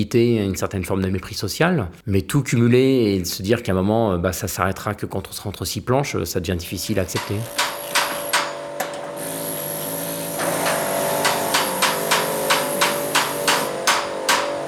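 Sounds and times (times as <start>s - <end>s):
speech: 0.0s - 7.8s
hammering at a construction site: 7.1s - 14.6s.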